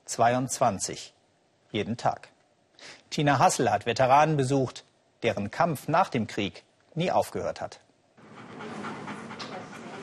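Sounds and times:
speech: 0:00.1 - 0:07.8
dog panting: 0:08.2 - 0:10.0.

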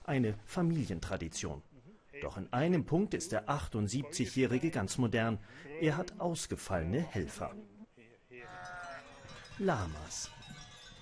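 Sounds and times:
speech: 0:00.1 - 0:07.8, 0:09.6 - 0:10.5
sheep bleating: 0:07.4 - 0:09.2.

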